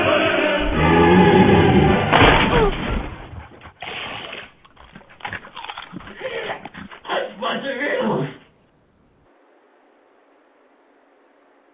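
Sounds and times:
dog whimpering and growling: 0:00.0 - 0:07.3.

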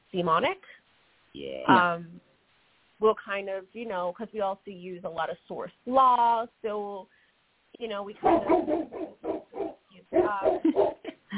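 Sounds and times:
speech: 0:00.1 - 0:02.3, 0:03.0 - 0:07.2, 0:07.8 - 0:09.3, 0:10.2 - 0:11.3
dog barking and yipping: 0:08.2 - 0:11.1.

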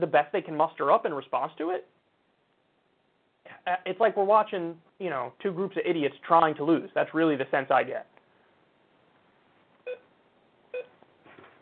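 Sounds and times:
speech: 0:00.0 - 0:02.0, 0:03.5 - 0:08.1
low hiss: 0:00.0 - 0:11.6
electronic beeps: 0:09.8 - 0:10.1, 0:10.7 - 0:11.0.

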